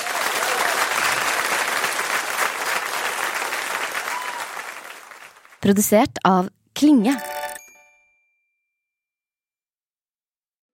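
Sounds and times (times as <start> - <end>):
audience applause: 0.0 - 6.0
speech: 5.6 - 7.3.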